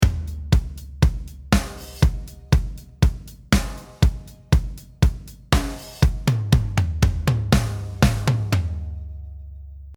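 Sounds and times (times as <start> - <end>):
drums through a gritty bus compressor: 0.0 - 9.2.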